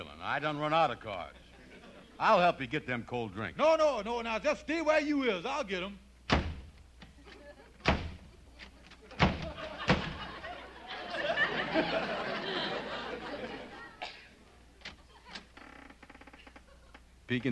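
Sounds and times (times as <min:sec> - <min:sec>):
speech: 0:00.2 - 0:01.4, 0:02.2 - 0:06.0, 0:11.8 - 0:12.2, 0:17.3 - 0:17.5
laughter: 0:01.1 - 0:02.4, 0:07.1 - 0:15.6, 0:16.4 - 0:17.1
door slamming shut: 0:06.3 - 0:06.8, 0:07.8 - 0:08.3, 0:09.1 - 0:10.4.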